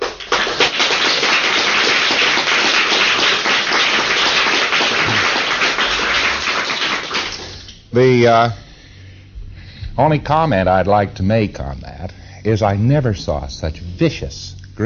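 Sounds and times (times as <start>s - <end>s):
crowd applause from many hands: 0.0s - 7.7s
speech: 7.9s - 8.6s, 10.0s - 14.8s.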